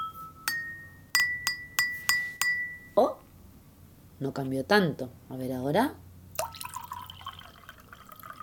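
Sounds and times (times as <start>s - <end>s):
glasses with different water amounts being struck: 0.0s - 3.0s
speech: 3.0s - 3.2s, 4.2s - 6.0s
water pouring into glasses: 6.4s - 8.4s.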